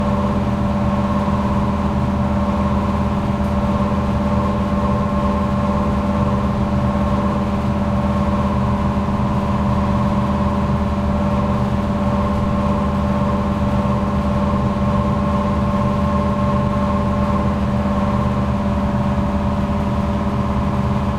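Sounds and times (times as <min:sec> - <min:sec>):
air conditioner unit running: 0:00.0 - 0:21.1.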